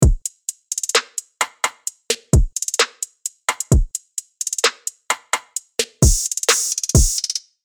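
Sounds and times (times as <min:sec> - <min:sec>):
MIDI drum kit: 0:00.0 - 0:07.4.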